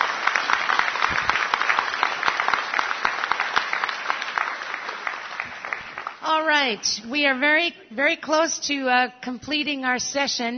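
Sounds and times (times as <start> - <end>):
audience applause thanking a presenter at a meeting: 0.0 - 6.4
speech: 6.6 - 10.5.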